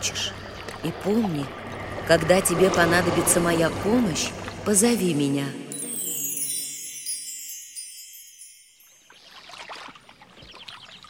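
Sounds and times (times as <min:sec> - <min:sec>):
river water flowing and splashing on a riverbank: 0:00.0 - 0:11.0
speech: 0:00.8 - 0:05.6
shimmering chime-like swell: 0:02.6 - 0:09.4.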